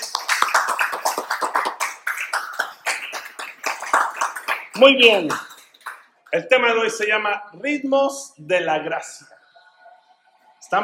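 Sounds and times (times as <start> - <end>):
audience applauding: 0.0 - 6.1
speech: 4.8 - 5.5, 6.3 - 9.4.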